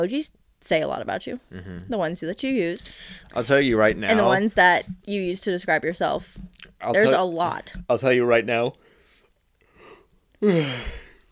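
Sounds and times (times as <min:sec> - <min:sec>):
speech: 0:00.0 - 0:08.8, 0:10.4 - 0:11.0
stifled yawn: 0:01.5 - 0:01.9, 0:10.4 - 0:11.2.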